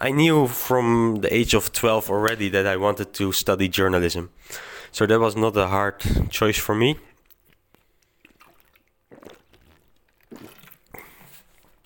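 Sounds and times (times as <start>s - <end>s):
speech: 0.0s - 7.1s
person drinking water: 7.0s - 11.8s.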